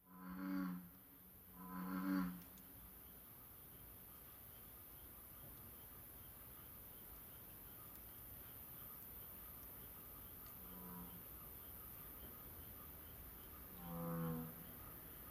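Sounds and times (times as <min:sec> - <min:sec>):
bullfrog croaking: 0:00.0 - 0:02.6, 0:10.6 - 0:11.3, 0:13.1 - 0:15.2.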